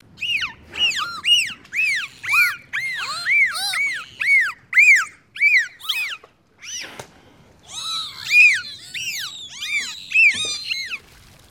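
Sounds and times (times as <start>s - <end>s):
dolphins: 0.0s - 11.5s.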